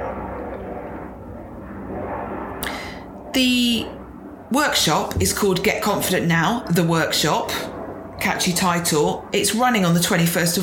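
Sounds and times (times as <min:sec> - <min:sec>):
airplane flying overhead: 0:00.0 - 0:10.6
speech: 0:03.4 - 0:10.6.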